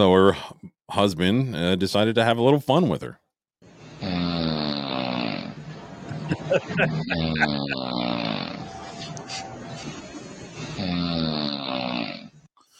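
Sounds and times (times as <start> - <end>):
speech: 0.0 - 3.2, 6.4 - 8.6
sleeping woman snoring: 3.9 - 5.6, 7.0 - 9.0, 10.6 - 12.5
laughter: 5.9 - 10.2.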